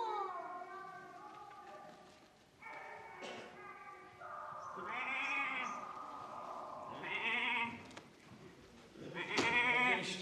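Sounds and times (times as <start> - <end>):
goat bleating: 4.8 - 5.8, 6.9 - 7.9, 9.1 - 10.1.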